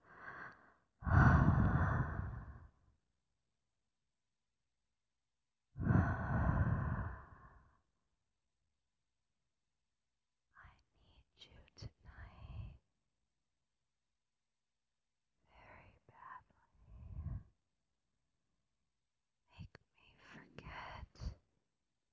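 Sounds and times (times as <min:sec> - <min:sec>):
hot breathing into an ear: 0:00.0 - 0:02.7, 0:05.8 - 0:07.8.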